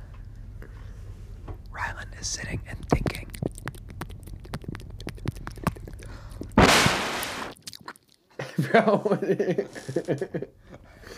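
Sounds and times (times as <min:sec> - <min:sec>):
speech: 0:02.2 - 0:03.2, 0:08.7 - 0:10.7
close-mic ASMR chewing and wet mouth noises: 0:02.2 - 0:06.6, 0:07.5 - 0:08.4
laughter: 0:08.4 - 0:10.5.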